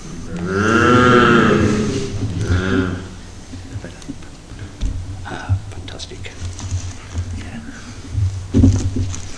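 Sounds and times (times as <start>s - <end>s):
big black cow mooing deeply in a stable: 0.3s - 3.3s
faint rustling: 1.4s - 9.3s.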